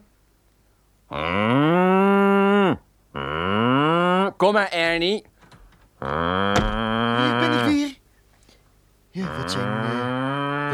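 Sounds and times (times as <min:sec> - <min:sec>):
human voices imitating a cow's moo: 0:01.1 - 0:04.4, 0:06.0 - 0:07.9, 0:09.2 - 0:10.7
speech: 0:04.4 - 0:05.3.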